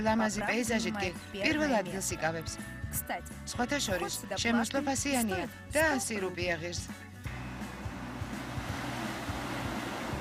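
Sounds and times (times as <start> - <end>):
speech: 0.0 - 7.1
wind: 7.3 - 10.2
surf washing in at a beach with giant polished boulders and clean sand: 8.4 - 10.2.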